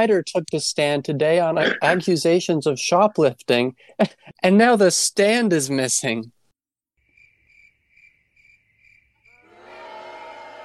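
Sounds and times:
speech: 0.0s - 6.4s
crickets chirping: 7.0s - 9.4s.

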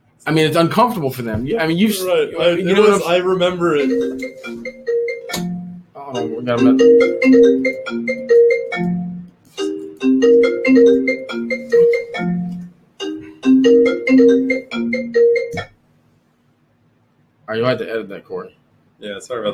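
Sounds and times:
speech: 0.2s - 4.8s, 6.1s - 8.9s, 10.2s - 12.5s, 13.6s - 15.7s, 17.5s - 19.5s
bright melodic phone ringtone: 2.7s - 15.7s.

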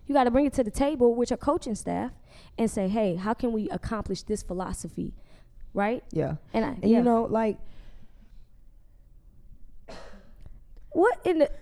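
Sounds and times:
speech: 0.1s - 7.8s, 10.9s - 11.6s
person coughing: 9.9s - 10.4s.

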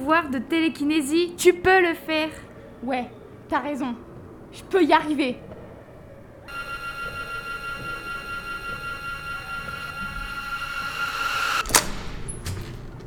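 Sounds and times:
speech: 0.1s - 5.5s
door opening with long steady mechanical whine: 6.5s - 13.0s.

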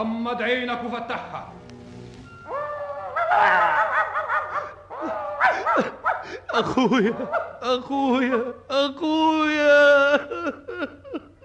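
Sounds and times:
speech: 0.0s - 1.8s, 3.3s - 11.0s
dog barking and whining: 2.4s - 7.7s
laughter: 2.5s - 8.7s, 9.6s - 11.4s.

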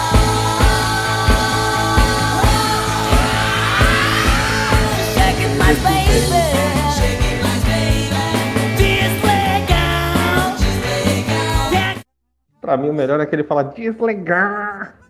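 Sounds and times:
dense guitars: 0.2s - 11.8s
loud live band playing: 0.6s - 11.7s
raw yelling vocal: 3.2s - 6.9s
speech: 12.7s - 15.0s.

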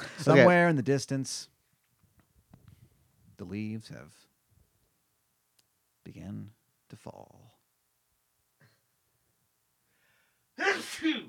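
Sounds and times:
speech: 0.2s - 1.6s, 3.4s - 4.3s, 6.1s - 7.6s, 10.8s - 11.2s
person sneezing: 10.6s - 11.2s.

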